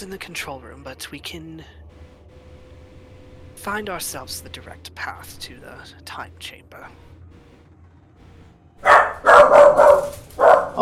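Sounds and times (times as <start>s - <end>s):
speech: 0.0s - 1.9s, 3.6s - 7.1s
excited puppy barking while greeting someone coming home: 8.8s - 10.7s.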